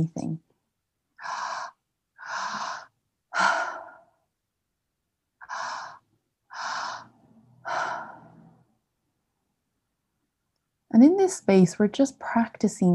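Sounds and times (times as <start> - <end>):
speech: 0.0 - 0.5, 10.9 - 12.9
soft airy breaths from a breathing practice: 1.2 - 4.3, 5.4 - 8.8.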